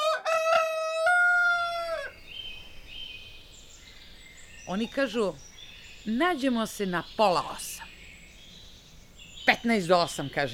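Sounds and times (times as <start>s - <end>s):
rooster crowing loudly: 0.0s - 2.2s
speech: 4.7s - 7.8s, 9.5s - 10.5s.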